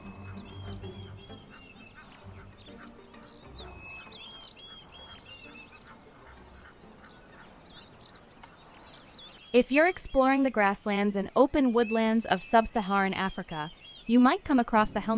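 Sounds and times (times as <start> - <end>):
flock of crowned sandgrouse chuckling and clucking: 0.0 - 9.6
speech: 9.6 - 15.1.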